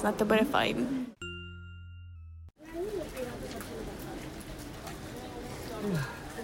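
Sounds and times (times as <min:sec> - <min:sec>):
speech: 0:00.0 - 0:01.2, 0:05.8 - 0:06.2
two-tone chime: 0:01.2 - 0:02.6.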